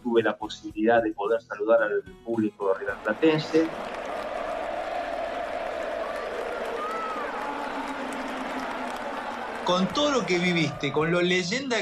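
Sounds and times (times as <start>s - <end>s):
speech: 0.2s - 4.0s, 9.6s - 11.8s
large stadium crowd applauding and cheering for a player: 2.6s - 11.8s.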